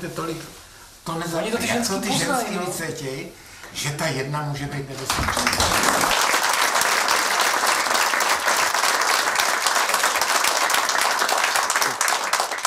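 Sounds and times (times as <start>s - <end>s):
speech: 0.0s - 6.0s
large audience applause: 5.0s - 12.6s.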